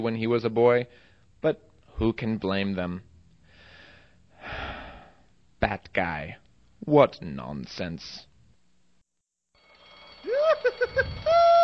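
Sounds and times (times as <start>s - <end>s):
speech: 0.0s - 3.1s, 5.6s - 8.3s, 10.5s - 11.6s
alarm bell ringing: 9.5s - 11.6s.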